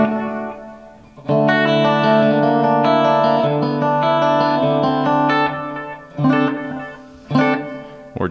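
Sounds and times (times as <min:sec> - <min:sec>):
slightly driven electric guitar chords through amp with limiter delay and reverb: 0:00.0 - 0:08.2.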